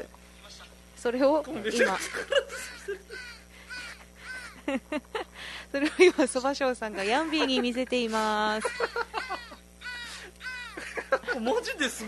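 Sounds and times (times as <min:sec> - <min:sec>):
speech: 0:01.0 - 0:03.3, 0:04.7 - 0:09.4, 0:11.4 - 0:12.0
laughter: 0:01.6 - 0:12.0
crows cawing in a played video: 0:02.5 - 0:04.7, 0:08.8 - 0:11.0.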